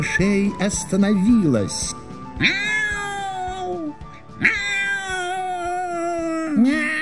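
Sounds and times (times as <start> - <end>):
speech: 0.0 - 2.7
human voice imitating cat meows: 2.4 - 6.9.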